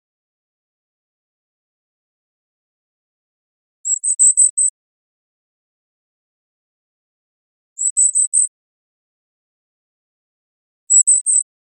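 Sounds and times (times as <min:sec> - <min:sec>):
golden-crowned kinglet calling high thin see notes: 0:07.8 - 0:08.5, 0:10.9 - 0:11.4.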